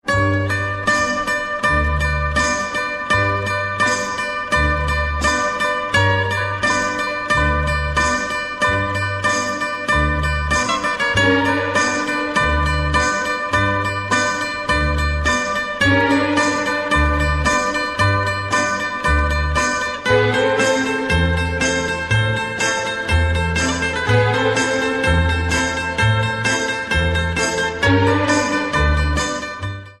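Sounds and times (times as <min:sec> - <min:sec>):
Greek-style ringtone melody: 0:00.1 - 0:29.9.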